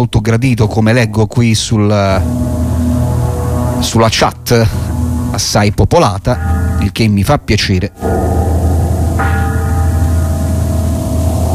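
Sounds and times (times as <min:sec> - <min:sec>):
speech: 0:00.0 - 0:02.5, 0:03.8 - 0:04.8, 0:05.4 - 0:08.4
dense steady droning low background in a music track: 0:00.0 - 0:11.5
bell struck in a music track: 0:06.4 - 0:07.1, 0:08.0 - 0:11.5.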